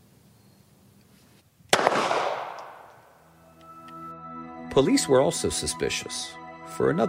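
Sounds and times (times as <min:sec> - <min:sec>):
single gunshot from a handgun with a loaded magazine: 0:01.7 - 0:03.1
speech: 0:04.8 - 0:07.0.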